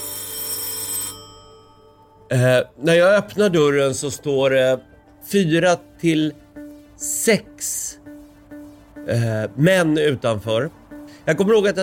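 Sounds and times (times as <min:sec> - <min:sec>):
doorbell ringing at a home: 0:00.0 - 0:03.4
speech: 0:02.3 - 0:06.4, 0:07.0 - 0:08.0, 0:09.0 - 0:11.8.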